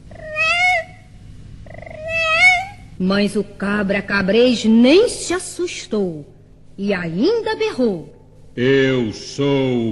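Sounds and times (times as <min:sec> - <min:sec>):
faint low hum: 0:00.0 - 0:09.9
cat meowing: 0:00.1 - 0:01.0, 0:01.7 - 0:02.8
speech: 0:03.0 - 0:09.9.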